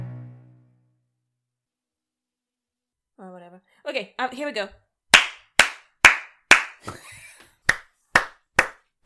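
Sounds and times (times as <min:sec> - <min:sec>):
speech: 0:03.6 - 0:04.8, 0:06.9 - 0:07.2
hands clapping: 0:05.1 - 0:09.0.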